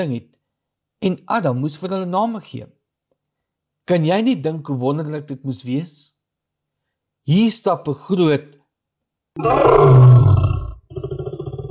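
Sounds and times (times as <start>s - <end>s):
speech: 0.0s - 0.4s, 1.0s - 2.8s, 3.9s - 6.2s, 7.2s - 8.6s, 9.4s - 10.2s
lion roaring: 9.4s - 11.6s.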